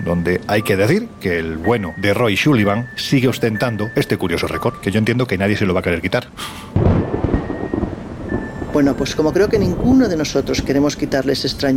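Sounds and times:
speech: 0:00.1 - 0:07.1, 0:08.8 - 0:11.7
thunder from a strong approaching storm: 0:06.8 - 0:11.7.

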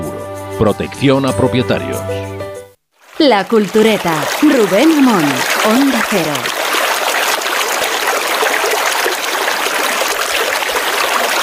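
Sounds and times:
speech: 0:00.6 - 0:02.4, 0:03.2 - 0:06.6
river stream flowing with splashing and burbling: 0:03.0 - 0:11.4.

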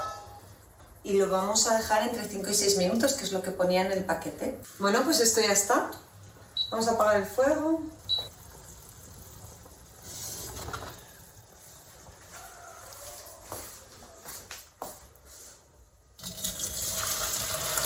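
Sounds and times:
speech: 0:01.1 - 0:06.1, 0:06.7 - 0:08.0
cold running water pouring over cooked pasta in a colander: 0:08.3 - 0:12.1, 0:16.2 - 0:17.8.

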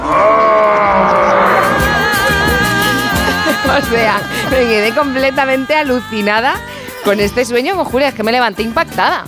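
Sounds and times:
person making a drawn-out straining grunt of weightlifting effort: 0:00.0 - 0:04.7
laughter: 0:00.9 - 0:07.3
speech: 0:03.8 - 0:09.2.

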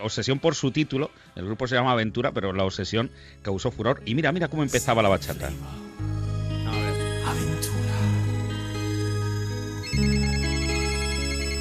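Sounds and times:
speech: 0:00.0 - 0:05.9
sustained low musical notes: 0:04.0 - 0:11.6
telephone ringing with an electronic warbling tone: 0:07.4 - 0:11.6.

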